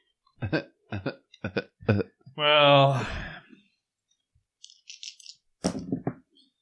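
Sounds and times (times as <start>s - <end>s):
speech: 0.4s - 2.1s
dice rattling and clattering across a hard surface in a tabletop role-playing game: 4.6s - 5.4s.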